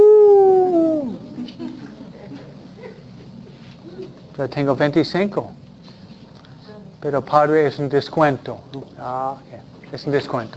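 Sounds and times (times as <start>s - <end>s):
person imitating a coyote howl: 0.0s - 1.4s
quiet noise: 0.0s - 10.5s
speech: 4.4s - 5.6s, 7.0s - 10.5s.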